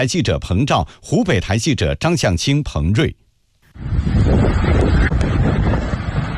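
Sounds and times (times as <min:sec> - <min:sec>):
speech: 0:00.0 - 0:03.2
strong storm wind roaring: 0:03.6 - 0:06.3.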